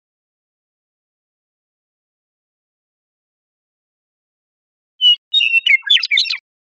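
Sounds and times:
western meadowlark song: 0:05.0 - 0:06.5.

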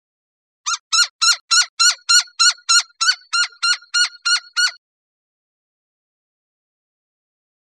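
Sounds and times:
Gila woodpecker calling with loud nasal yelping notes: 0:00.7 - 0:04.8.

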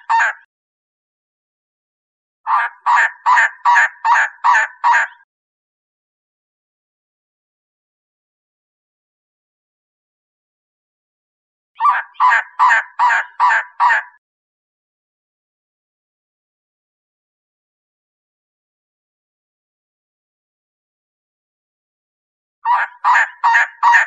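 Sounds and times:
Elegant trogon croaking calls: 0:00.0 - 0:00.5, 0:02.5 - 0:05.3, 0:11.8 - 0:14.2, 0:22.6 - 0:24.0.

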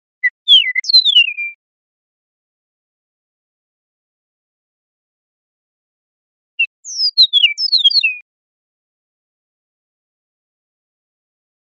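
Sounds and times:
Eastern meadowlark singing in Costa Rica: 0:00.1 - 0:01.6, 0:06.6 - 0:08.2.

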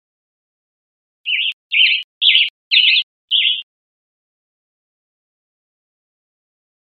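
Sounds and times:
western tanager hoarse burry song: 0:01.3 - 0:03.6.

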